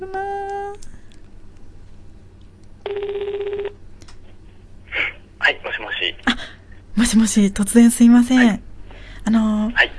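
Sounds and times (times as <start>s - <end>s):
speech: 0.0s - 0.5s, 7.1s - 9.9s
ringback tone of an outgoing telephone call: 2.8s - 3.8s.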